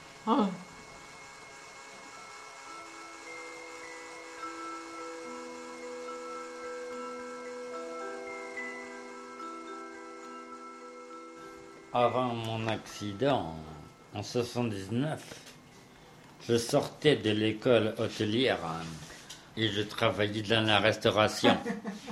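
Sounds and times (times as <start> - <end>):
electric blender running: 0.0 - 14.9
speech: 0.2 - 0.6, 11.9 - 15.5, 16.5 - 22.1.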